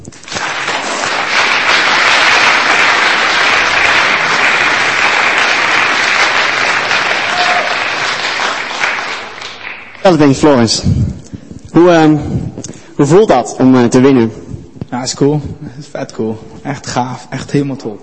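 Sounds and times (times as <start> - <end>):
audience applause: 0.1 - 10.3
speech: 10.0 - 11.2, 11.8 - 14.4, 15.0 - 18.0.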